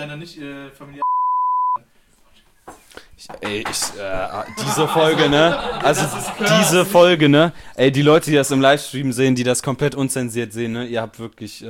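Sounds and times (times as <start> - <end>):
speech: 0.0 - 1.1, 3.2 - 11.6
censor beep: 1.0 - 1.8
laughter: 4.2 - 7.5.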